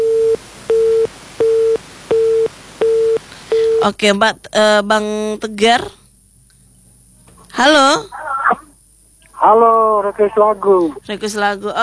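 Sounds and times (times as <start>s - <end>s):
telephone line busy tone after a call drops: 0.0s - 3.9s
speech: 3.8s - 6.0s, 7.6s - 8.2s, 9.4s - 11.8s.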